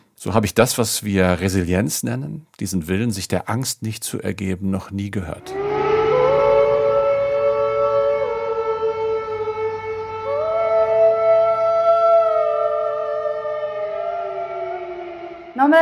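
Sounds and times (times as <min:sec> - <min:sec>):
speech: 0:00.2 - 0:05.6
sirens wailing: 0:05.4 - 0:15.7.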